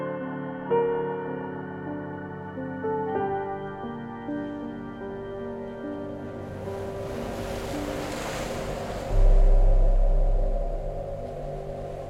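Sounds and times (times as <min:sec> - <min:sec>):
sustained droning musical tone: 0:00.2 - 0:12.0
sea waves surging: 0:05.6 - 0:12.0.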